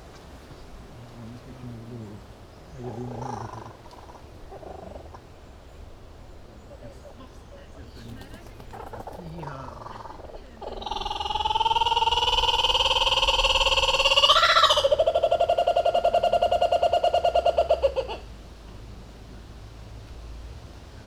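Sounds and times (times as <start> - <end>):
wind: 0.0 - 21.0
laughing kookaburra calling: 8.3 - 18.3.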